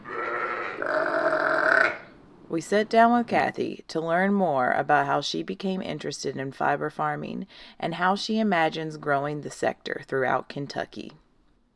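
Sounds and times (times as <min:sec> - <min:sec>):
sheep bleating in a barn on a sheep farm in Bourbon County Kentucky: 0:00.0 - 0:02.1
speech: 0:02.5 - 0:11.2.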